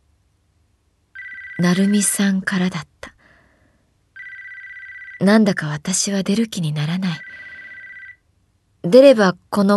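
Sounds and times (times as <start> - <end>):
mobile phone ringtone with rapid electronic trill: 1.2 - 2.1, 4.2 - 5.3, 7.0 - 8.2
speech: 1.6 - 3.2, 5.2 - 7.5, 8.8 - 9.7.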